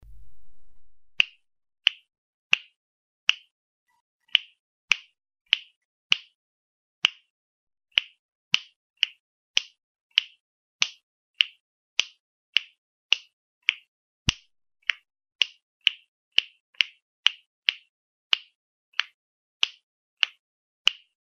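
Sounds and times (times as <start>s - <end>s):
finger snap: 0.8s - 3.5s, 4.3s - 6.4s, 7.0s - 7.3s, 7.9s - 21.2s.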